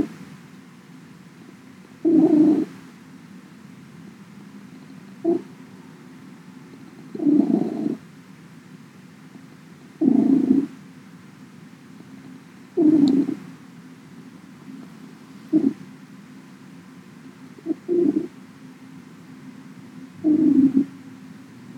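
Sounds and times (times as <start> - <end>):
cat purring in rumbling bursts: 2.0 - 2.7, 5.2 - 5.5, 7.2 - 8.0, 10.0 - 10.8, 12.8 - 13.4, 15.5 - 15.8, 17.6 - 18.3, 20.2 - 20.9.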